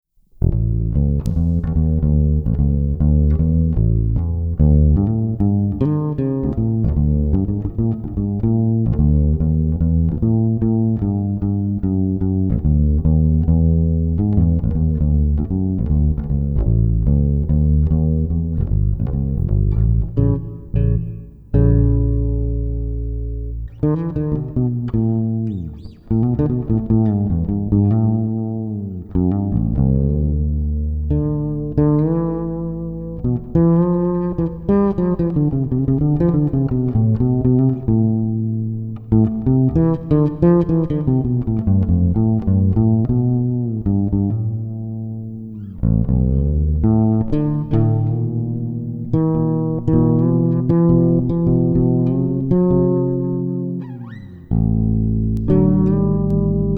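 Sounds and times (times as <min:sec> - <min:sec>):
fretless instrument: 0:00.4 - 0:56.7.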